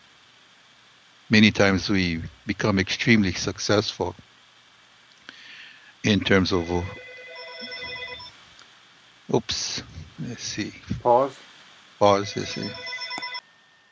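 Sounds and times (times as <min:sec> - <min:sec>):
speech: 0:01.3 - 0:04.3, 0:06.0 - 0:07.1, 0:09.3 - 0:12.9
telephone ringing with electronic trill: 0:06.6 - 0:08.3, 0:12.1 - 0:13.5.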